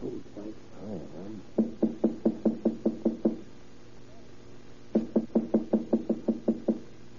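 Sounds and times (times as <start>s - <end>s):
firm knocking on an apartment door: 1.6s - 3.4s, 5.0s - 6.9s.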